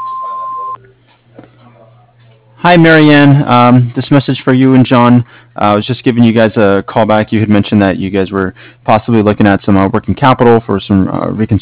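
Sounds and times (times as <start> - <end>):
low phone-line hum: 0.0 - 0.8
voicemail answering machine beep: 0.0 - 0.8
speech: 2.6 - 11.5.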